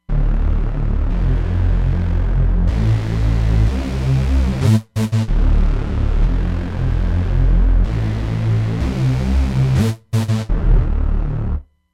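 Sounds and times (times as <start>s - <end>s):
Nu RnB saw synth on Roland Fantom XR: 0.1s - 11.6s.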